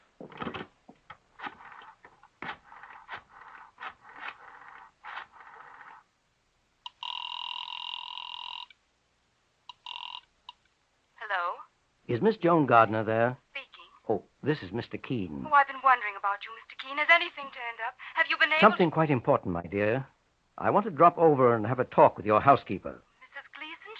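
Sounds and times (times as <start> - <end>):
steady electronic telephone ring: 6.9 - 8.8, 9.7 - 10.3
speech: 12.1 - 13.4, 14.1 - 17.7, 18.4 - 23.1.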